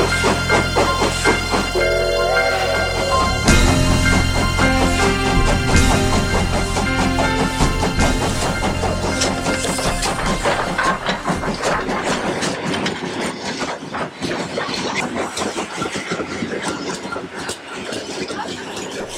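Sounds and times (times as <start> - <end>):
metallic clanks of a train: 0.0 - 12.7
train rumbling and clattering pulling into a station: 0.0 - 17.8.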